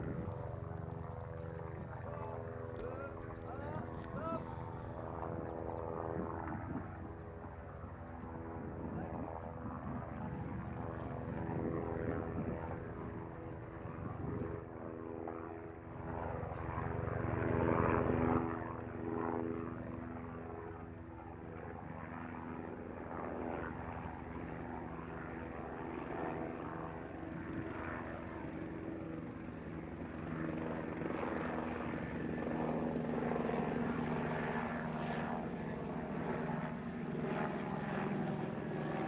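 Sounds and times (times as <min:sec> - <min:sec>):
helicopter flying overhead above a field: 0:00.0 - 0:39.0.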